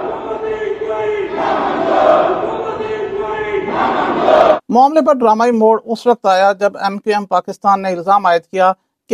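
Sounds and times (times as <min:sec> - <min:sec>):
lawmakers chanting protest slogans in an assembly: 0:00.0 - 0:04.7
speech: 0:04.7 - 0:09.1.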